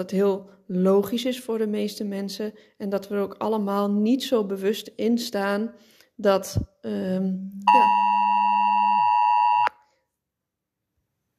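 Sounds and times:
speech: 0:00.0 - 0:08.0
NL-Alert emergency alert tone from a phone: 0:07.7 - 0:09.7.

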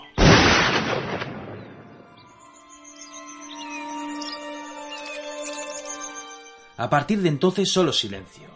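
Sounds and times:
matchlock arquebus gunshot fired in a jungle: 0:00.2 - 0:02.2
speech: 0:06.8 - 0:08.5.

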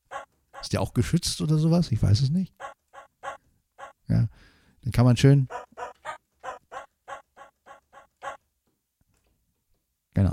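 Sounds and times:
Yamaha electronic keyboard dog bark sound effect: 0:00.0 - 0:00.7, 0:02.6 - 0:04.0, 0:05.5 - 0:08.4
speech: 0:00.6 - 0:02.7, 0:05.0 - 0:05.6.

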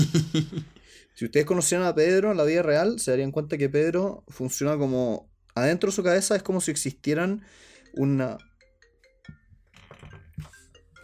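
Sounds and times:
laughter: 0:00.0 - 0:00.8
speech: 0:00.0 - 0:08.5
bell ringing: 0:07.7 - 0:11.0.

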